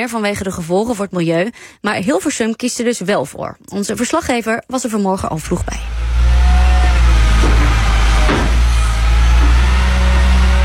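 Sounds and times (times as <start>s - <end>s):
speech: 0.0s - 6.2s
wheel loader scooping road salt toward a gritting truck at a municipal works yard: 5.5s - 10.6s.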